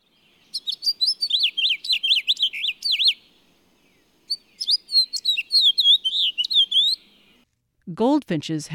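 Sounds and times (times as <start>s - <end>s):
house finch warbling song: 0.5s - 3.2s, 4.3s - 7.4s
speech: 7.9s - 8.7s.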